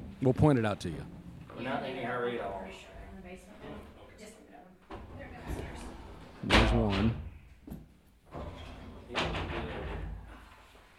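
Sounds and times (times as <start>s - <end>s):
speech: 0.2s - 3.9s, 6.4s - 7.2s
sliding door scraping shut: 5.0s - 7.3s, 8.3s - 10.4s.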